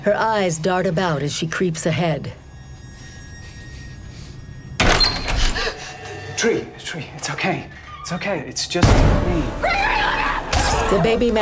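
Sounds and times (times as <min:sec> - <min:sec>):
speech: 0:00.0 - 0:02.4, 0:06.4 - 0:09.9, 0:10.9 - 0:11.3
door bursting open: 0:04.8 - 0:05.7.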